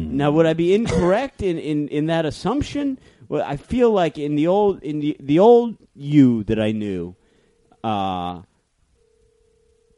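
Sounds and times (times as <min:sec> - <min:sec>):
speech: 0:00.2 - 0:07.2, 0:07.8 - 0:08.5
phone ringing with a buzzy electronic tone: 0:09.0 - 0:09.9.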